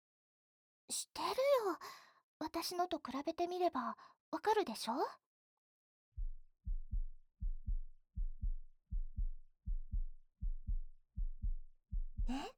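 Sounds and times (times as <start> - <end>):
speech: 0.9 - 5.2, 12.3 - 12.5
heartbeat heard with an ear pressed to a chest: 6.2 - 12.5.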